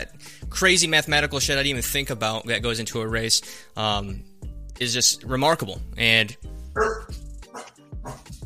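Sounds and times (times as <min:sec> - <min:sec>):
speech: 0:00.0 - 0:07.2
dog barking: 0:06.8 - 0:08.3.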